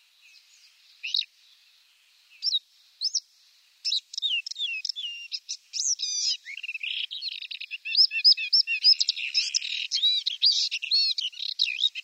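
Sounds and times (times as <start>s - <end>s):
paddyfield warbler fast continuous chattering warble with trills: 0.2s - 1.7s, 2.3s - 12.0s
high chirps of paddyfield warbler: 3.9s - 12.0s.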